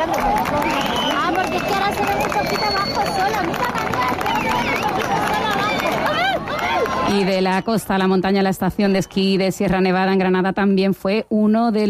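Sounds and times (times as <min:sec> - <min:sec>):
crowd on a beach shouting: 0:00.0 - 0:07.5
speech: 0:01.9 - 0:04.7, 0:07.1 - 0:11.8.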